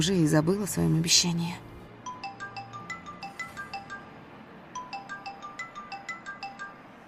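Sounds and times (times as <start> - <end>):
speech: 0.0 - 1.7
telephone ringtone of an incoming call: 2.0 - 7.0.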